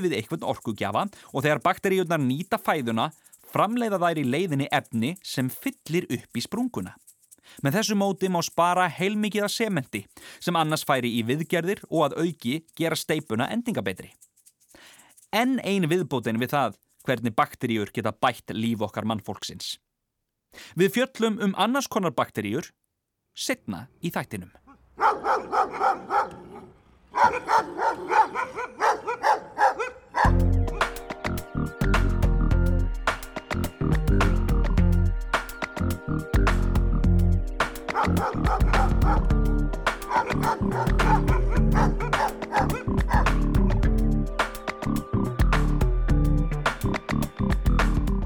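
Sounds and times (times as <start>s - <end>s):
speech: 0.0s - 14.3s, 15.3s - 19.8s, 20.5s - 22.8s, 23.4s - 26.4s, 27.2s - 29.4s
dog barking and yipping: 24.7s - 31.0s, 37.8s - 43.8s
loud rhythmic music with a heavy bass beat: 30.3s - 48.2s.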